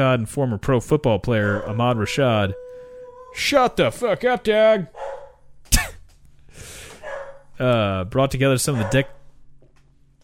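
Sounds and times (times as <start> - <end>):
speech: 0.0 - 2.6, 3.3 - 5.1, 7.6 - 9.2
female dog barking at somebody backing a boat up: 4.9 - 5.4, 7.0 - 7.5, 8.7 - 9.2.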